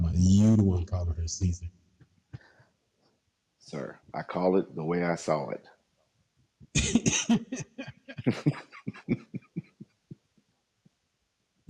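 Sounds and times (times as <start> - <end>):
laughter: 0.1 - 1.5, 6.8 - 9.7
speech: 0.2 - 1.8, 3.7 - 5.8, 6.7 - 9.2
harsh raspy coughing fit: 6.8 - 9.6.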